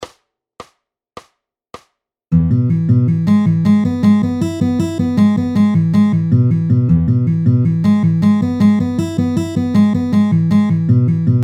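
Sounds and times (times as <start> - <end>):
rolls bass guitar lick: 2.4 - 11.4.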